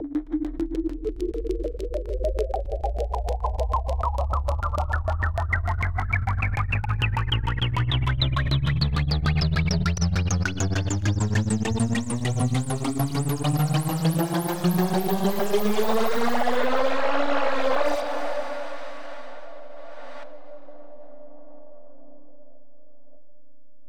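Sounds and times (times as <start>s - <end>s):
club music risers and drops: 0.0s - 21.0s.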